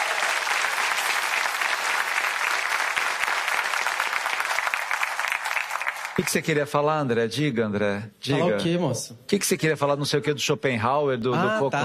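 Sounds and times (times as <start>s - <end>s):
audience applauding: 0.0s - 6.6s
speech: 6.2s - 11.8s.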